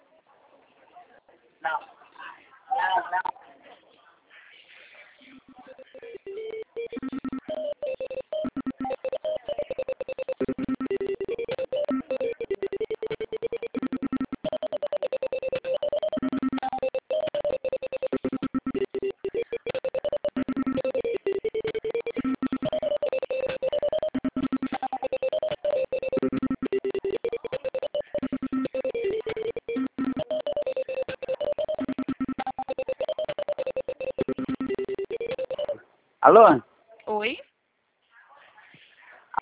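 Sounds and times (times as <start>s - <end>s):
speech: 1.6s - 2.0s, 2.7s - 3.4s
telephone call ringing tone through a phone line: 5.6s - 35.8s.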